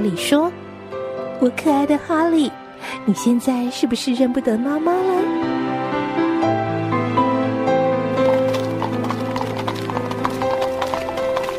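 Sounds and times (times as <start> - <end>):
speech: 0.0 - 0.6, 1.4 - 5.6
music: 0.0 - 11.5
horse hooves clip-clopping as a carriage pulls up to a door: 8.2 - 11.5.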